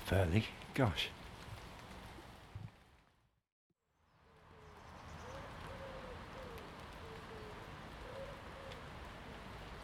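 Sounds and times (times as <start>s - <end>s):
speech: 0.1s - 1.2s
wood pigeons cooing: 4.4s - 9.5s.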